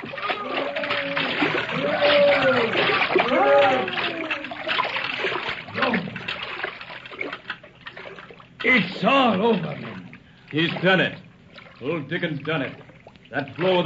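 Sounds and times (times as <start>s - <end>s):
rising and falling tonal whale cries: 0.0s - 6.3s
water churning and splashing as a whale thrashes and dives: 0.0s - 13.8s
speech: 8.7s - 9.8s, 10.5s - 11.2s, 11.8s - 13.8s.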